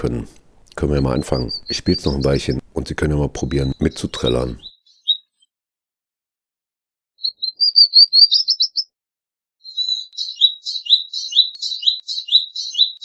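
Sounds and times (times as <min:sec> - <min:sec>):
speech: 0:00.0 - 0:04.7
Palestine sunbird singing: 0:00.7 - 0:05.5, 0:07.2 - 0:08.9, 0:09.6 - 0:13.0.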